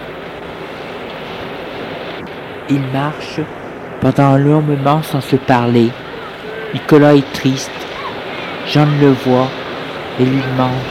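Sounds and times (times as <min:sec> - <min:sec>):
sea waves washing onto a beach at night: 0:00.0 - 0:10.8
speech: 0:02.7 - 0:06.0, 0:06.7 - 0:07.8, 0:08.7 - 0:09.6, 0:10.2 - 0:10.8.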